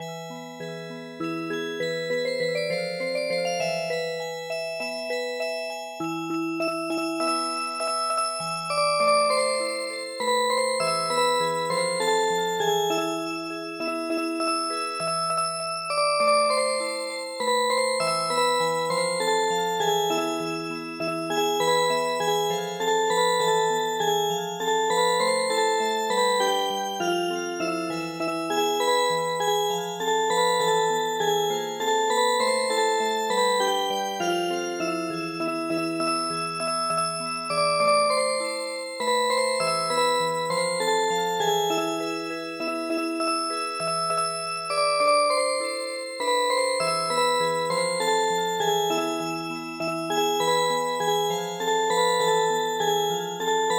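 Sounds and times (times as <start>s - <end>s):
traditional music box melody in MIDI: 0.1s - 53.7s.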